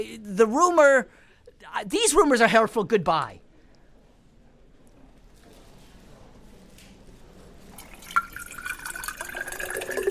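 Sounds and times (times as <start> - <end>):
speech: 0.0 - 3.4
water trickling from a water fountain: 7.7 - 10.0.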